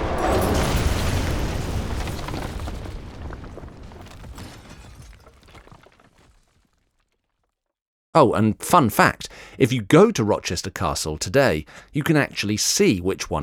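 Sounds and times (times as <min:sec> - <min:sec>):
stone tower collapsing with deep rumble and crashing masonry: 0:00.0 - 0:07.5
tumbling debris and scattered cracks: 0:00.0 - 0:07.5
speech: 0:08.2 - 0:13.4.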